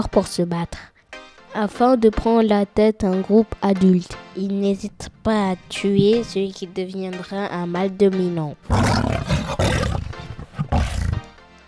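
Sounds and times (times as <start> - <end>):
speech: 0.0 - 0.9, 1.5 - 10.0
lion roaring: 8.7 - 11.3.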